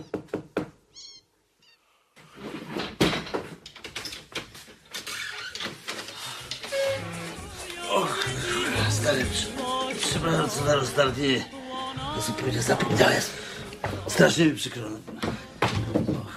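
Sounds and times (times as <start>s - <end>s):
knocking on a door: 0.0s - 0.8s
busy noise: 0.0s - 16.3s
cat meowing: 0.9s - 1.8s
speech: 9.0s - 11.6s, 12.2s - 15.1s.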